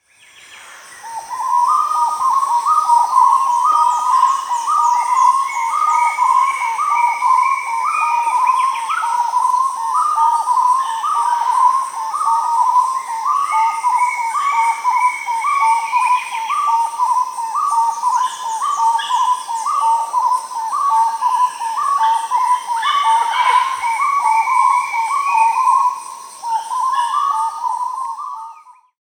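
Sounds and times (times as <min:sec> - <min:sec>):
Starred Wood-Quail (Odontophorus stellatus) calling in Peru: 0:01.4 - 0:28.8.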